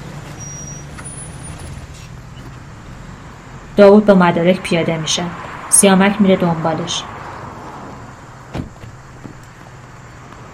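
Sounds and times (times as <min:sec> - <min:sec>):
cars pulling over and braking to stop: 0:00.0 - 0:10.5
steady low engine and road noise: 0:00.0 - 0:10.5
brief thin high-pitched brake squeals: 0:00.2 - 0:02.6
speech: 0:03.8 - 0:07.1.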